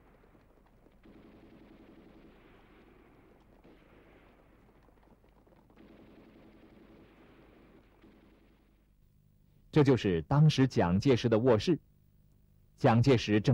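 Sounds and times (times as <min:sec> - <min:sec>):
booming blasts at Huaqing Pool in Lintong: 0:00.0 - 0:08.0
rumbling gunfire at Huaqing Pool in Lintong: 0:00.0 - 0:08.9
speech: 0:09.8 - 0:11.9, 0:12.8 - 0:13.5.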